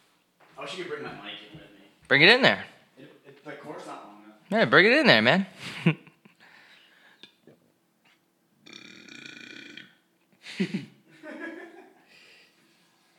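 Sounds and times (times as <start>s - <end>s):
speech: 0.7s - 3.9s, 4.5s - 6.0s, 10.6s - 10.9s
person burping: 8.6s - 10.0s
laughter: 10.5s - 12.1s.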